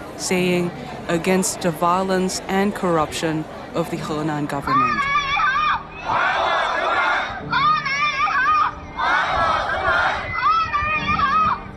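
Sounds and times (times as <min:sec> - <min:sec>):
speech: 0:00.2 - 0:05.2
protest crowd chanting slogans: 0:04.6 - 0:11.2.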